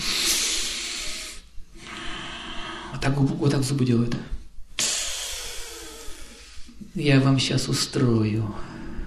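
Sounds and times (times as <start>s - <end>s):
voice imitating heavy hissing breathing of a drunk person: 0.0s - 3.0s, 4.8s - 6.9s
speech: 3.0s - 4.4s, 7.0s - 8.7s.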